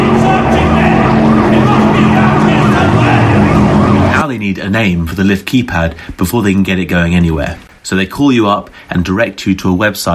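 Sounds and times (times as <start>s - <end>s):
police boat engine roaring as it speeds past: 0.0s - 4.2s
speech: 4.7s - 10.1s.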